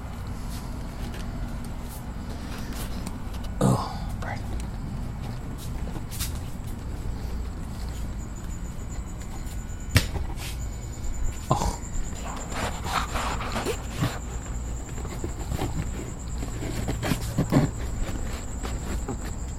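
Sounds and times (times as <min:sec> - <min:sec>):
cricket chirping: 0:00.0 - 0:19.5
footsteps of a person walking out to the front of a house: 0:05.1 - 0:10.7, 0:11.3 - 0:19.5.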